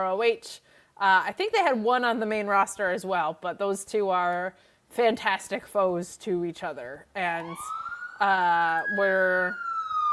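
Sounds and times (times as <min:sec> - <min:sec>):
speech: 0:00.0 - 0:09.6
police siren wailing: 0:07.4 - 0:10.1.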